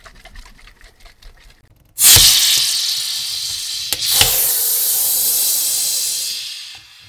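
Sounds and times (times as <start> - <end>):
shaken soda bottle opening with a hiss of escaping gas: 2.0 - 7.0
soda fizzing bubbles: 2.0 - 7.0.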